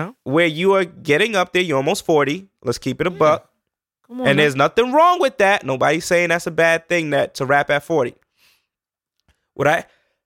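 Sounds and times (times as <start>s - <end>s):
speech: 0.0s - 3.5s, 4.1s - 8.2s, 9.6s - 10.2s
single short sharp sneeze: 4.2s - 4.5s.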